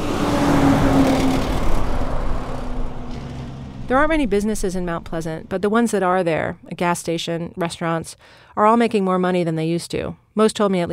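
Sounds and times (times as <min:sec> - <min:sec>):
heavy truck traffic rumbling on a busy main street: 0:00.0 - 0:06.9
speech: 0:03.9 - 0:10.9.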